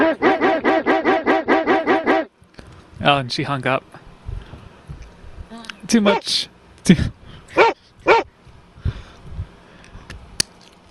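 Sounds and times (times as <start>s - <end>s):
dog barking loudly: 0.0s - 2.3s, 6.0s - 6.3s, 7.6s - 8.3s
speech: 3.1s - 4.0s, 5.9s - 7.8s.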